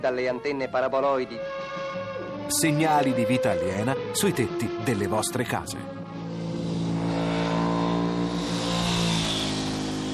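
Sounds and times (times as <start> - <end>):
speech: 0.0 - 1.8, 2.5 - 6.0
racing car engine revving: 6.1 - 10.1.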